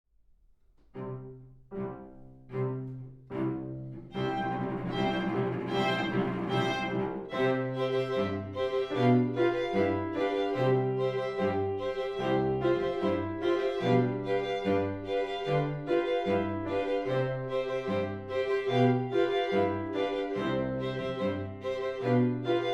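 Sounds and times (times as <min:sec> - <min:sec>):
piano piece: 0:01.0 - 0:22.7.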